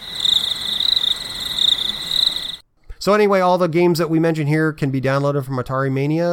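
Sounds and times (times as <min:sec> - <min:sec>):
chorus of crickets chirping: 0:00.0 - 0:02.6
speech: 0:03.0 - 0:06.3.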